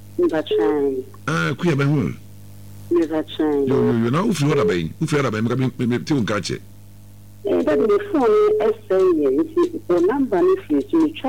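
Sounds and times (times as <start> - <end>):
low constant hum: 0.0 - 11.2
automated telephone message played over a phone line: 0.2 - 2.2, 2.9 - 6.6, 7.5 - 11.2
speech: 0.2 - 2.2, 2.9 - 6.7, 7.7 - 11.2.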